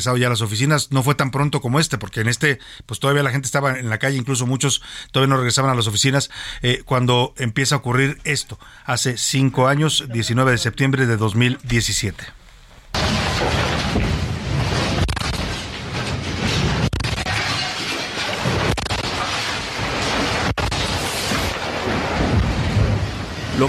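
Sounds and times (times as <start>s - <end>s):
speech: 0.0s - 12.4s
earthquake rumble: 3.6s - 23.6s
sharp knocks and bangs of buildings striking one another: 12.9s - 23.2s.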